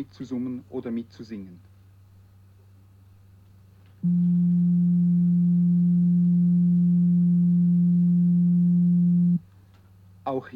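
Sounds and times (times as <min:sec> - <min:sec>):
speech: 0:00.0 - 0:01.7, 0:04.0 - 0:04.8, 0:10.3 - 0:10.5
steady mid-low pure tone for a pitch memory test: 0:04.0 - 0:09.5.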